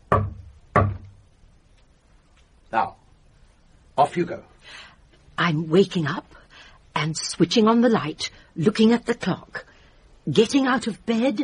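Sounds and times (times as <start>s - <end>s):
heavy bangs on a communicating door: 0.1s - 1.2s
speech: 2.7s - 3.0s, 4.0s - 6.4s, 7.0s - 9.7s, 10.3s - 11.4s.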